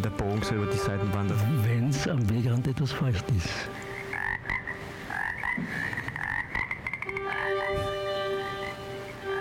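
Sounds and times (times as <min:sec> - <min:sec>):
speech: 0:00.0 - 0:03.9
chorus of frogs croaking: 0:03.2 - 0:09.4.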